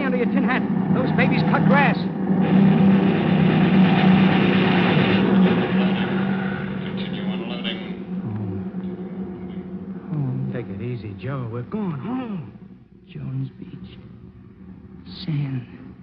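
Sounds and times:
Messerschmitt fighter planes with propeller engines flying low overhead: 0.0s - 10.1s
speech: 0.2s - 2.6s, 11.4s - 13.7s.

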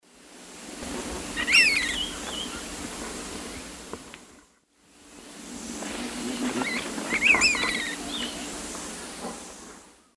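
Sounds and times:
Myiarchus swainsoni calls: 1.3s - 2.9s, 5.9s - 9.4s.

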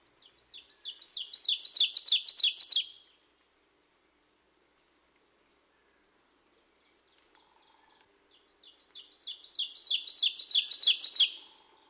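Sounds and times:
ovenbird warbler singing teacher phrases in forest understory: 0.1s - 3.1s, 6.8s - 11.8s.

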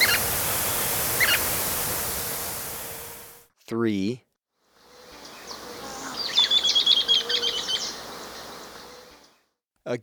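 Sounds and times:
sooty-crowned flycatcher calling in a rapid run of clipped notes in Ecuador: 0.0s - 3.4s, 5.1s - 8.8s
constant background hiss: 0.0s - 3.5s, 4.7s - 9.3s.

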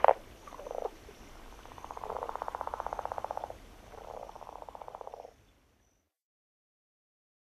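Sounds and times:
Chiricahua leopard frog grunts: 0.0s - 5.3s.

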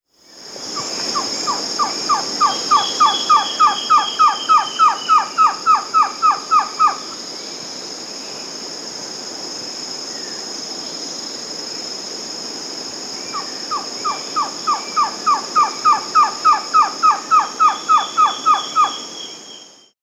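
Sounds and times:
White-tailed Trogon Trogon viridis calling in South America: 0.8s - 7.1s, 13.3s - 19.0s.

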